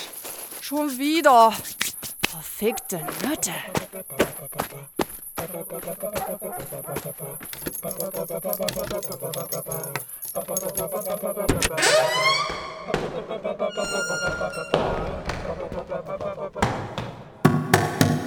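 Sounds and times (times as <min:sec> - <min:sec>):
speech: 0:00.7 - 0:01.7, 0:02.6 - 0:17.1
door rattling: 0:07.5 - 0:13.1
heavy banging and kicking against a door: 0:11.5 - 0:13.3, 0:16.6 - 0:18.2.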